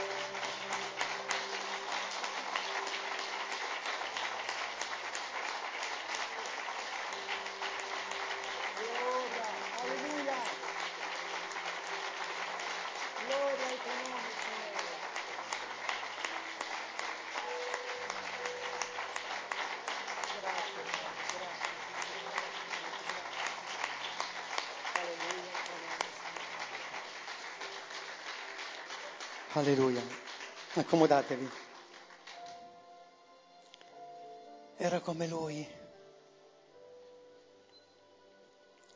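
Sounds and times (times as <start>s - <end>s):
large audience standing and applauding loudly: 0.0s - 32.6s
speech: 29.6s - 30.2s, 30.8s - 31.6s, 34.8s - 35.8s.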